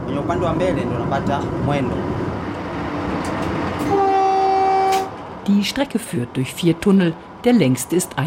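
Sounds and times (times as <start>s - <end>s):
electrified SGR train in East Africa rumbling along the rails: 0.0s - 8.2s
speech: 0.1s - 2.2s, 5.5s - 8.2s
sustained SGR train horn blast: 3.8s - 5.2s.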